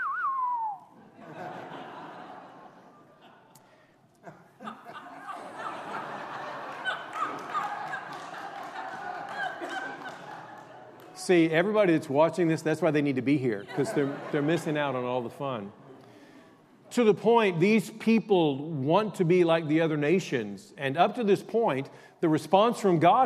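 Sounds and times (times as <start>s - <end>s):
person giving a short sharp downward-sliding whistle: 0.0s - 1.0s
room full of people laughing and chattering: 0.0s - 16.9s
speech: 11.2s - 15.8s, 17.0s - 23.2s.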